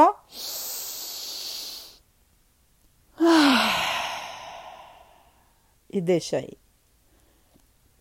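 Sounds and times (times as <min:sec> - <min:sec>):
deep breath inhaled through the nose: 0:00.3 - 0:02.0, 0:03.2 - 0:05.6
speech: 0:05.9 - 0:06.6.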